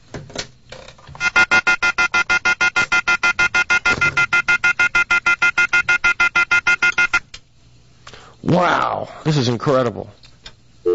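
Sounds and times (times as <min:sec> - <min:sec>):
telephone ringing with an electronic trill: 0:01.2 - 0:07.2
speech: 0:08.6 - 0:10.2.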